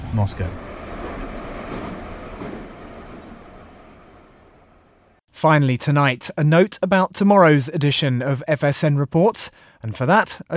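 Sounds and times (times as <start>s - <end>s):
metro train rolling along rails: 0.0s - 5.2s
speech: 0.1s - 0.7s, 5.4s - 10.5s.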